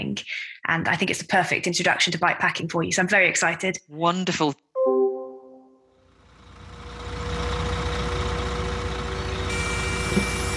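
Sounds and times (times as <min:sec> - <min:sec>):
speech: 0:00.0 - 0:04.6
bus engine idling in Crackington Haven: 0:06.1 - 0:10.5.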